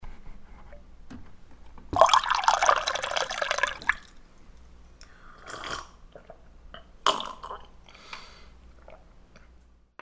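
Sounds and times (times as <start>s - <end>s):
water pouring: 1.9s - 4.2s.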